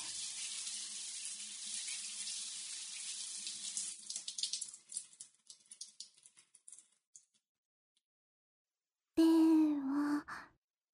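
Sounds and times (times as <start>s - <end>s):
shower spraying water: 0.0s - 6.2s
brief breathy voiced sound: 9.2s - 10.6s.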